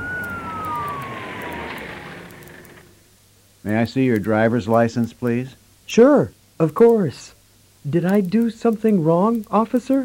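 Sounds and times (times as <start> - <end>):
police car siren wailing: 0.0 - 2.9
road and engine rumble inside a moving car: 0.0 - 3.1
speech: 3.6 - 10.0.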